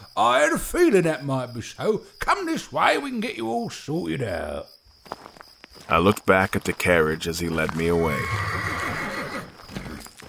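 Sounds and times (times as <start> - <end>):
speech: 0.2 - 5.2, 5.8 - 9.0
horse whinnying: 8.0 - 10.1.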